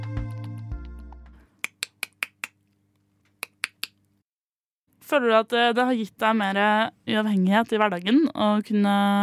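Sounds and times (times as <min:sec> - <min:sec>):
sharp tongue clicks for echolocation: 0:01.6 - 0:02.6, 0:03.4 - 0:04.1
speech: 0:05.1 - 0:09.2.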